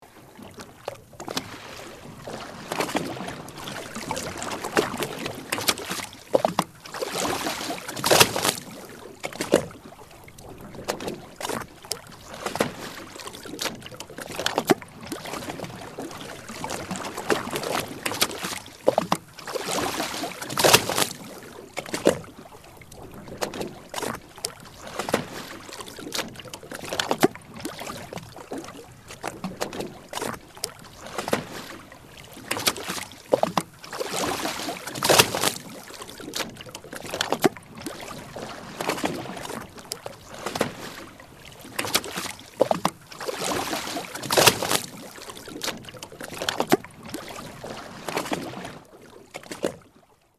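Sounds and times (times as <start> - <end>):
waves lapping against a boat: 0.0 - 50.3.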